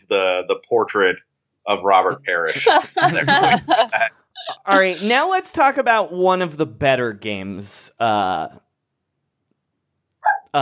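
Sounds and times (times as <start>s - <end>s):
speech: 0.1s - 8.6s
laughter: 2.3s - 5.2s
tiny dog yipping: 10.2s - 10.6s.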